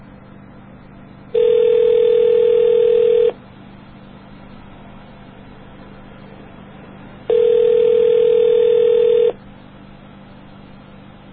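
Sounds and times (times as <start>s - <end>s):
modem answering tone over a phone line: 1.3s - 3.4s, 7.3s - 9.4s.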